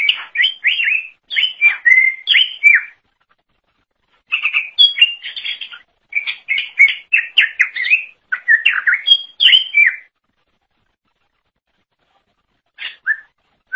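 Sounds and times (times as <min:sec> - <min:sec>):
leafbird song with slurred whistles and chattering notes: 0:00.0 - 0:03.1, 0:04.2 - 0:10.2, 0:12.7 - 0:13.7.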